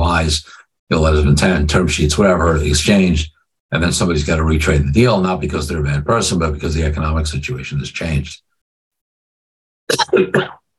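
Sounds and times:
speech: 0:00.2 - 0:08.5, 0:09.9 - 0:10.6
person coughing: 0:09.9 - 0:10.6.

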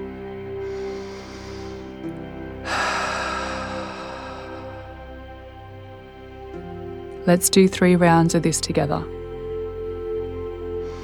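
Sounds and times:
deep breath during a slow-breathing exercise with sighing exhale: 0:00.0 - 0:05.7, 0:10.8 - 0:11.0
low constant hum: 0:00.0 - 0:11.0
speech: 0:07.3 - 0:09.2.

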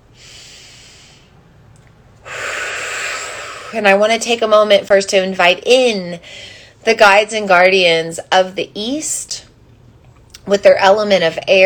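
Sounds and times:
deep breath drawn in by a person leading a meditation ceremony: 0:00.1 - 0:01.4, 0:02.2 - 0:03.8
speech: 0:03.7 - 0:09.5, 0:10.4 - 0:11.6.

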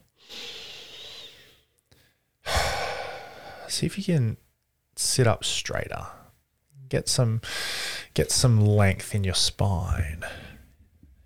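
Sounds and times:
person taking a big deep breath during a guided coaching exercise: 0:00.2 - 0:03.7, 0:07.4 - 0:08.2
speech: 0:03.7 - 0:04.4, 0:05.0 - 0:06.2, 0:06.9 - 0:10.4.

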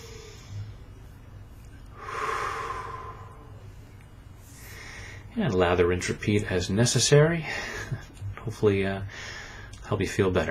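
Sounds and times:
quiet hiss: 0:00.0 - 0:10.4
deep breath: 0:01.9 - 0:03.7, 0:04.4 - 0:05.3, 0:09.1 - 0:09.8
speech: 0:05.4 - 0:10.4.

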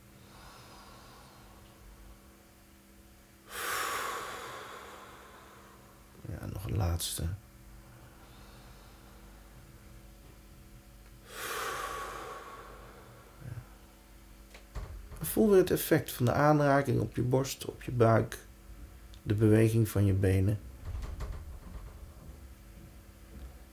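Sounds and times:
slow deep breathing in a guided relaxation exercise: 0:00.1 - 0:02.3, 0:03.4 - 0:06.2, 0:07.8 - 0:10.4, 0:11.2 - 0:15.2
speech: 0:06.8 - 0:07.4, 0:15.4 - 0:18.5, 0:19.2 - 0:20.7.

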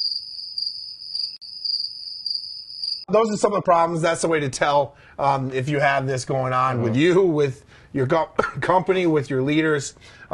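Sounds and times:
crickets chirping in a high-pitched trill: 0:00.0 - 0:03.1
speech: 0:03.1 - 0:10.3.

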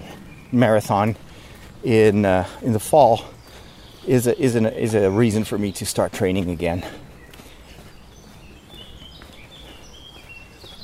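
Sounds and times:
blackbirds singing in the early morning among trees and grass: 0:00.0 - 0:10.8
footstep-like noise: 0:00.0 - 0:10.8
speech: 0:00.5 - 0:03.4, 0:04.0 - 0:07.0.

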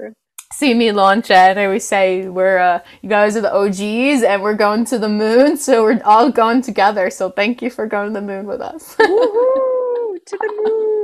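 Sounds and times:
speech: 0:00.0 - 0:11.0
person howling like a wolf: 0:09.3 - 0:11.0.

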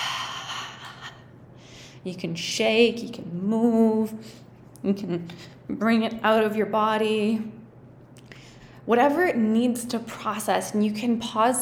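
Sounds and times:
deep breathing in and out: 0:00.0 - 0:02.0
speech: 0:02.0 - 0:07.6, 0:08.8 - 0:11.6.

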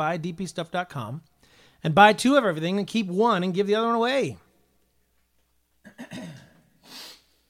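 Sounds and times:
speech: 0:00.0 - 0:04.4
person sneezing: 0:05.9 - 0:07.3
person sniffing: 0:06.8 - 0:07.4.

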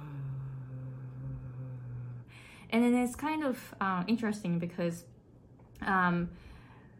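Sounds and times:
kargyraa low-pitched throat singing drone: 0:00.0 - 0:02.6
speech: 0:02.7 - 0:05.1, 0:05.8 - 0:06.5.

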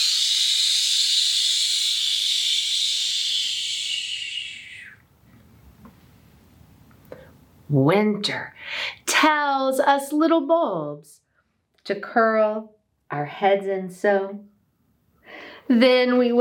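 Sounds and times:
voice imitating wind whooshing through trees: 0:00.0 - 0:05.0
speech: 0:07.7 - 0:08.6, 0:09.2 - 0:11.1, 0:11.9 - 0:14.5, 0:15.7 - 0:16.3.

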